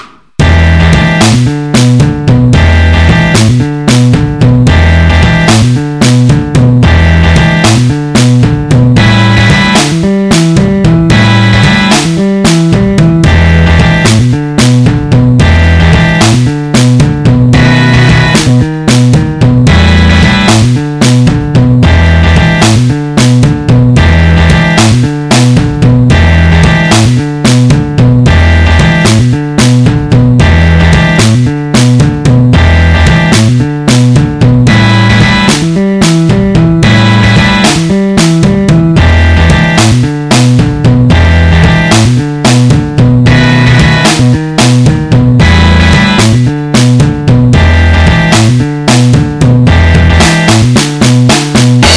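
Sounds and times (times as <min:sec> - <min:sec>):
blues guitar solo backing track: 0:00.4 - 0:51.9.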